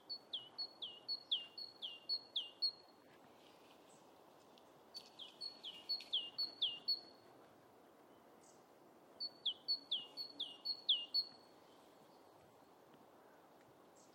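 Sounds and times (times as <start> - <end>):
great tit singing: 0.0 - 2.8, 5.0 - 7.1, 9.2 - 11.4.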